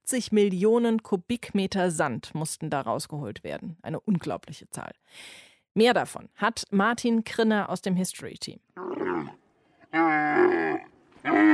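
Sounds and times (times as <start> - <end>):
speech: 0.1 - 11.5
angry camel grumbling with throaty bellows: 8.8 - 11.5.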